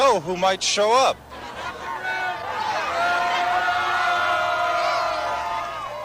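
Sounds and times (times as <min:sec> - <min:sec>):
speech: 0:00.1 - 0:01.4
large crowd screaming and chanting a name: 0:01.2 - 0:06.0.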